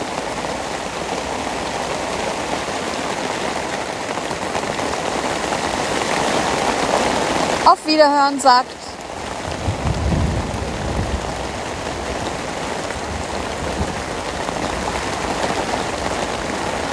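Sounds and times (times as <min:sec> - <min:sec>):
steady dense rain pouring during a thunderstorm at a campsite: 0:00.0 - 0:16.9
speech: 0:07.9 - 0:08.8
low rumble of thunder during a rainstorm at a campsite: 0:09.0 - 0:16.9.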